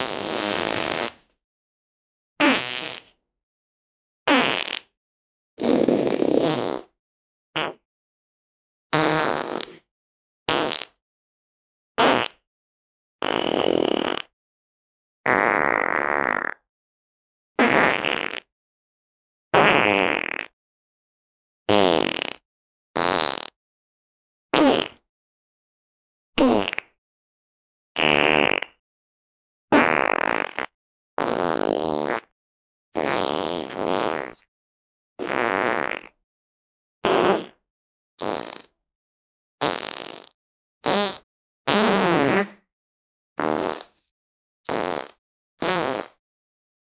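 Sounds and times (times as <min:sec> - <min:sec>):
farting: 0:00.0 - 0:01.2, 0:02.4 - 0:03.2, 0:04.3 - 0:05.0, 0:05.6 - 0:07.0, 0:07.6 - 0:07.8, 0:09.0 - 0:09.9, 0:10.5 - 0:11.0, 0:12.0 - 0:12.4, 0:13.2 - 0:14.3, 0:15.3 - 0:16.6, 0:17.6 - 0:18.5, 0:19.6 - 0:20.6, 0:21.7 - 0:22.4, 0:23.0 - 0:23.6, 0:24.6 - 0:25.0, 0:26.4 - 0:27.0, 0:28.0 - 0:28.8, 0:29.7 - 0:32.3, 0:33.0 - 0:34.5, 0:35.2 - 0:36.2, 0:37.0 - 0:37.6, 0:38.2 - 0:38.8, 0:39.6 - 0:42.7, 0:43.4 - 0:44.0, 0:44.7 - 0:46.2.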